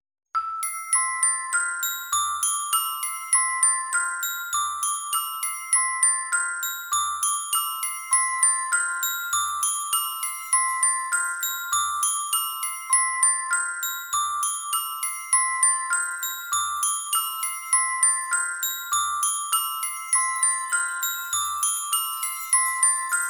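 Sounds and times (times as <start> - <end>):
Christmas bell tune: 0.4 - 23.2.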